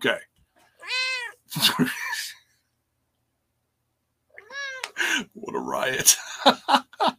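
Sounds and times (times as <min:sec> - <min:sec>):
speech: 0:00.0 - 0:00.3, 0:01.5 - 0:02.2, 0:05.3 - 0:07.1
cat meowing: 0:00.8 - 0:01.4, 0:04.3 - 0:05.0
laughter: 0:06.0 - 0:07.1.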